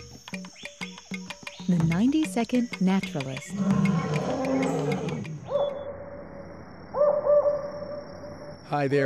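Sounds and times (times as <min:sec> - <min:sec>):
speech: 0:01.7 - 0:04.7, 0:08.7 - 0:09.0
owl hooting: 0:03.4 - 0:08.6.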